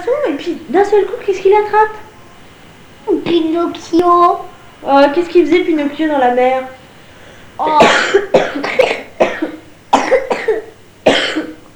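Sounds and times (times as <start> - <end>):
speech: 0.0 - 2.1, 3.3 - 6.8, 7.6 - 8.4
loud harsh coughs: 7.6 - 11.7.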